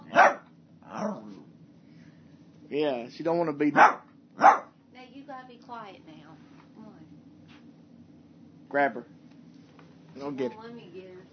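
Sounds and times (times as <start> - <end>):
female dog barking with a growling edge: 0.0 - 1.3, 3.7 - 4.8
speech: 2.7 - 4.5, 5.4 - 6.5, 8.7 - 9.1, 10.2 - 11.3.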